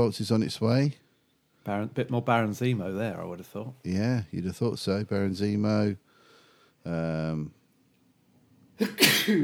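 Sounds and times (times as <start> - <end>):
speech: 0.0 - 1.0, 1.6 - 6.1, 6.8 - 7.6, 8.8 - 9.4
person sneezing after a drawn-out voiced ahh: 8.8 - 9.4.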